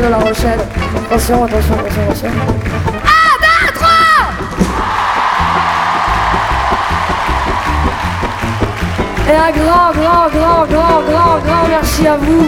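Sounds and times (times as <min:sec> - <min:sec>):
speech: 0:00.0 - 0:03.2, 0:09.3 - 0:12.4
festival audience steady clapping: 0:00.0 - 0:12.4
large festival audience in La Rochelle yelling and cheering: 0:03.5 - 0:09.4.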